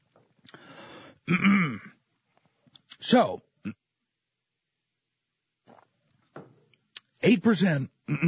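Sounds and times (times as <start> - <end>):
speech: 1.3 - 1.9, 3.0 - 3.8, 7.3 - 8.2
raspy throat clearing: 1.3 - 2.0, 8.1 - 8.2.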